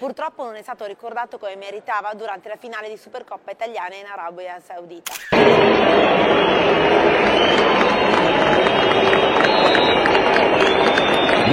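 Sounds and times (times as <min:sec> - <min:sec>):
speech: 0:00.0 - 0:06.8
large stadium crowd in Riyadh whistling and jeering at the Italian Super Cup final: 0:05.3 - 0:11.5.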